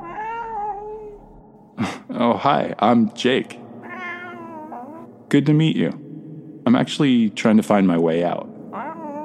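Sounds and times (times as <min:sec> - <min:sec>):
cat meowing: 0:00.0 - 0:01.2, 0:03.8 - 0:05.1, 0:08.7 - 0:09.2
speech: 0:01.8 - 0:03.6, 0:05.3 - 0:06.0, 0:06.7 - 0:08.5.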